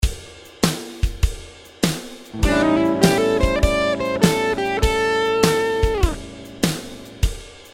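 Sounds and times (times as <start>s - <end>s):
blues guitar notes: 2.4s - 7.4s.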